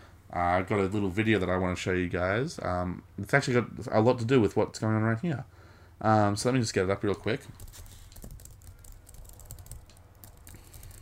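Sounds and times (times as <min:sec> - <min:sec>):
speech: 0:00.3 - 0:07.9
keys clicking on a computer keyboard: 0:07.5 - 0:11.0.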